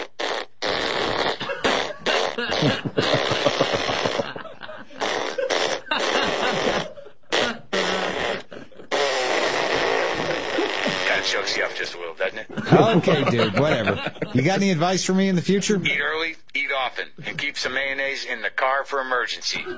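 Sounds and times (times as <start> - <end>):
farts from a person on a high-fat diet: 0.0 - 4.4, 5.0 - 11.9
laughter: 1.4 - 9.0, 9.6 - 11.6, 12.3 - 15.0, 17.1 - 17.6, 19.6 - 19.7
speech: 2.6 - 3.3, 13.0 - 19.7.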